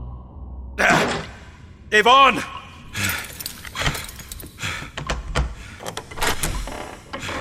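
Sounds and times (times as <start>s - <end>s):
speech: 1.9s - 3.2s
metallic jangle like keys: 3.0s - 4.9s
door latch clicking as a door is pulled open: 4.9s - 7.2s.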